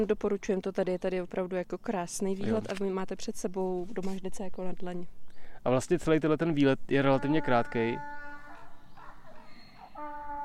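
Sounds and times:
speech: 0.0 - 8.2
donkey braying outdoors: 7.1 - 10.4.

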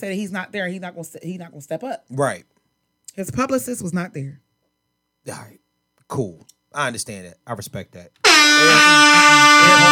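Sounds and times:
speech: 0.0 - 2.6, 3.2 - 4.4, 5.2 - 9.9
air horn sound effect blast: 8.2 - 9.9.

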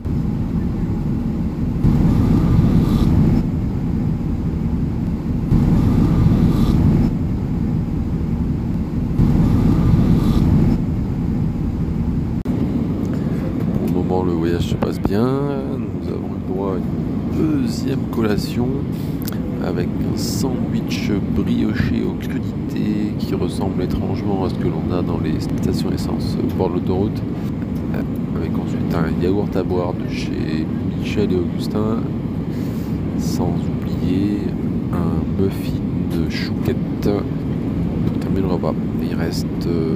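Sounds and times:
airplane passengers murmuring and chatting: 0.0 - 4.0, 12.6 - 39.9
airplane cabin roar in flight: 0.0 - 39.9
speech: 23.4 - 32.2, 33.4 - 34.6, 35.4 - 37.3, 38.6 - 39.9.

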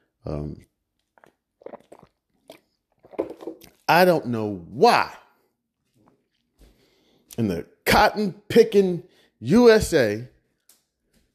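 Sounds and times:
speech: 0.2 - 0.7, 3.9 - 5.2, 7.4 - 10.3
sipping and swallowing water from a plastic bottle: 0.4 - 3.9
plastic water bottle crinkling: 1.2 - 3.9.

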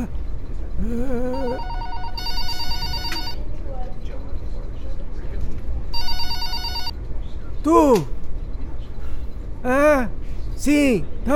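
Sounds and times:
speech: 0.8 - 1.8, 7.6 - 8.1, 9.9 - 11.3
mobile phone ringtone: 1.3 - 3.4, 6.0 - 7.0.

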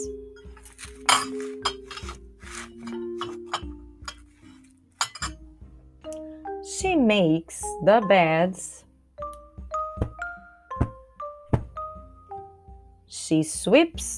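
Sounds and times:
dishes clinking while being washed: 0.4 - 4.3, 5.0 - 5.4
speech: 1.1 - 1.7, 6.9 - 8.8, 13.3 - 14.1.

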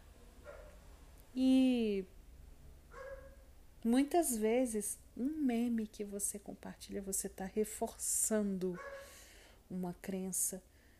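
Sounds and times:
low steady hum: 0.0 - 10.9
dog barking: 0.4 - 0.8, 2.9 - 3.4, 8.8 - 9.1
speech: 1.4 - 2.1, 3.8 - 9.1, 9.7 - 10.7.

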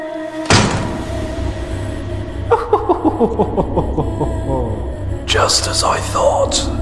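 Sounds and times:
low rumble of a heavy spaceship door opening: 0.1 - 6.7
metallic clunk of a key unlocking a spaceship door: 0.4 - 1.2
laughter: 2.5 - 5.0
speech: 3.2 - 6.7.

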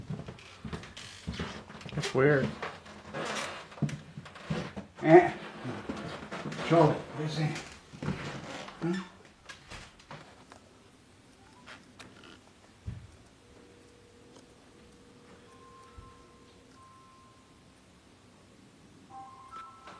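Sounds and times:
quiet rustling: 0.0 - 16.8
speech: 2.0 - 2.7, 5.0 - 5.8, 6.7 - 7.7, 8.8 - 9.1
phone ringing in another room: 13.4 - 17.9, 19.1 - 19.9.

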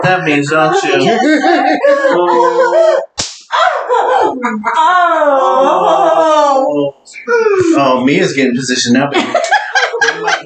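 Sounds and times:
laughter: 0.0 - 6.5, 9.0 - 10.4
speech: 0.0 - 9.6
sharp smack from a combination spanking device: 3.2 - 3.6.

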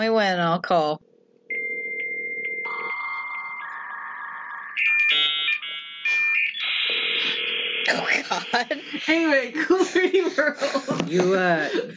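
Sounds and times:
speech: 0.0 - 1.1, 7.9 - 11.9
work phone electronic ringtone: 1.5 - 9.2
laughter: 7.2 - 11.9.

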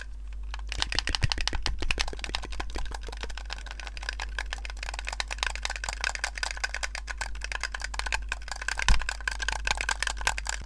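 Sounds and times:
low steady hum: 0.0 - 10.6
sharper pops: 0.6 - 8.0
ASMR mouth sounds clicking and crackling into a headset mic: 0.6 - 10.6.

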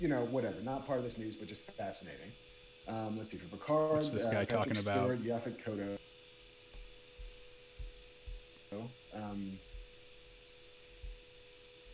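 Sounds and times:
speech: 0.0 - 6.1, 8.7 - 9.7
vacuum cleaner running: 0.0 - 11.9.

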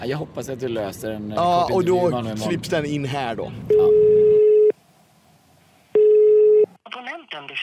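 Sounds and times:
speech: 0.0 - 4.1, 7.4 - 7.6
electronic ringback tones on a phone line: 3.7 - 4.8, 6.0 - 6.7.

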